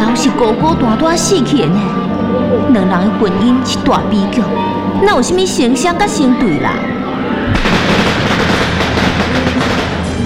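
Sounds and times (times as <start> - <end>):
speech: 0.2 - 7.0
string of firecrackers bursting: 7.5 - 10.2.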